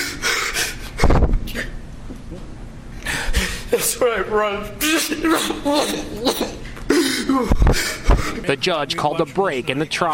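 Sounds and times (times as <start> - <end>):
man gasping for air while sobbing on a witness stand: 0.0 - 1.8, 3.0 - 3.9, 4.8 - 8.5
speech: 3.8 - 6.6, 7.3 - 10.1.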